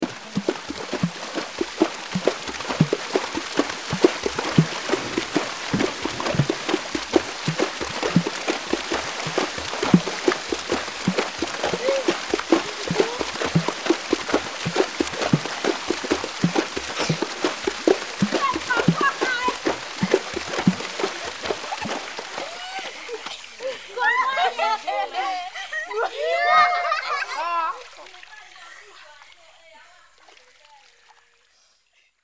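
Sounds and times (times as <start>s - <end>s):
water drums: 0.0s - 29.1s
laughter: 11.6s - 13.5s, 20.6s - 28.1s.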